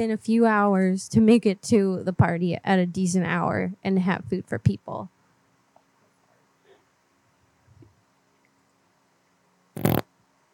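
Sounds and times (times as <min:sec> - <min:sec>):
speech: 0:00.0 - 0:05.2
fart: 0:09.8 - 0:10.1.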